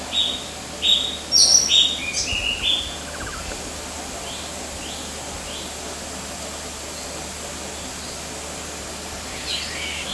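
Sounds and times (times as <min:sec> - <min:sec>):
white-throated fantail calling at HQ, Kinabalu Park: 0:00.2 - 0:03.6.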